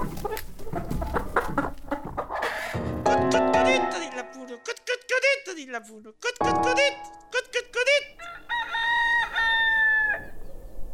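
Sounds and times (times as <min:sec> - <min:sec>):
hens clucking: 0:00.0 - 0:03.0
speech: 0:03.7 - 0:08.5
rooster crowing: 0:08.2 - 0:10.4.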